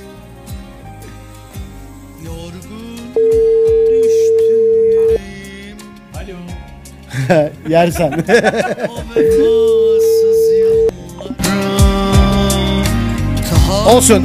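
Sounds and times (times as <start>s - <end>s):
music: 0.0s - 14.2s
telephone busy or unanswered call tone: 3.2s - 5.2s, 9.2s - 10.9s
laughter: 7.1s - 9.9s
speech: 7.3s - 9.8s, 13.9s - 14.2s.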